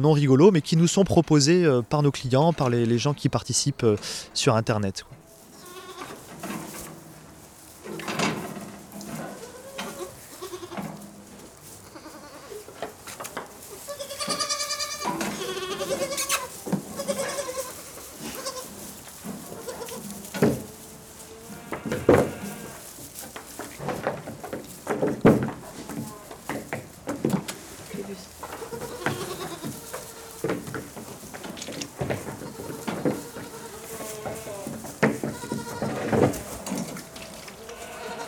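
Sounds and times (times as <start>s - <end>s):
speech: 0.0s - 5.2s
faint barnyard clatter and shuffling: 5.2s - 38.2s
goats bleating: 5.4s - 7.0s, 7.8s - 23.2s, 27.5s - 38.2s.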